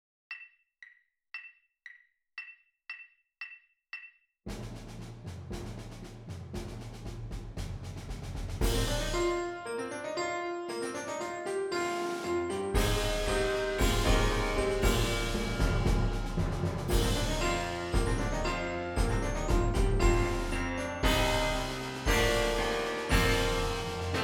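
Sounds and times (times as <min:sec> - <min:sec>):
percussion: 0:00.3 - 0:24.2
piano: 0:08.6 - 0:24.2.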